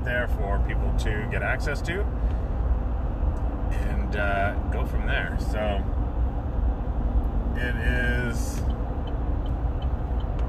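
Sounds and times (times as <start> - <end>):
road traffic rumble: 0.0 - 10.4
speech: 0.1 - 2.4, 3.7 - 6.0, 7.6 - 8.7.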